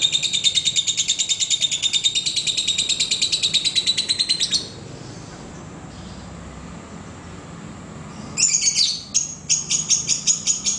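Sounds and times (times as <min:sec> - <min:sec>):
lovebird sharp high chirps: 0:00.0 - 0:05.3, 0:08.1 - 0:10.7.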